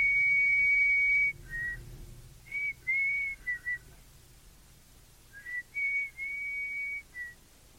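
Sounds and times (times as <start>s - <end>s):
person whistling a melodic tune: 0.0s - 1.8s, 2.5s - 3.9s, 5.3s - 7.4s
faint low hum: 0.0s - 7.7s.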